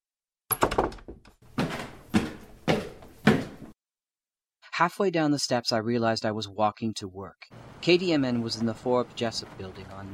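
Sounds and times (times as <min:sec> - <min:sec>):
door opening and closing: 0:00.5 - 0:03.7
speech: 0:04.8 - 0:10.1.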